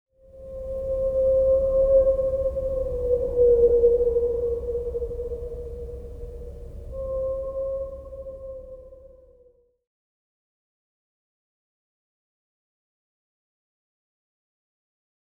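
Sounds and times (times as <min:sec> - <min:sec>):
whales calling: 0:00.4 - 0:09.6.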